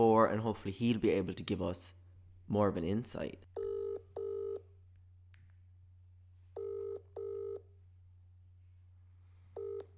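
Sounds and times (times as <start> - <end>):
speech: 0.0 - 3.5
telephone ringing tone over the line: 3.6 - 4.6, 6.6 - 7.7, 9.6 - 9.9.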